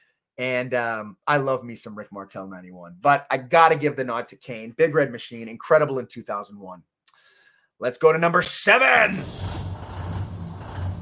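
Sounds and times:
speech: 0:00.4 - 0:06.9, 0:07.8 - 0:09.5
heavy truck engine rumbling: 0:09.2 - 0:11.0.

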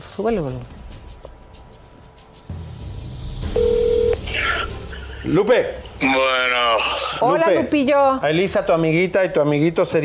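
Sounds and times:
speech: 0:00.0 - 0:00.8, 0:05.2 - 0:10.0
telephone electronic tone while placing a call: 0:03.6 - 0:04.2.

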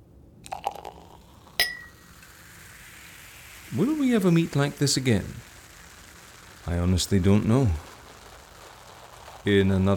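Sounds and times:
champagne trickling: 0:00.4 - 0:09.9
champagne glasses clinking in a toast: 0:00.5 - 0:02.0
speech: 0:03.7 - 0:05.5, 0:06.7 - 0:07.9, 0:09.4 - 0:09.9.

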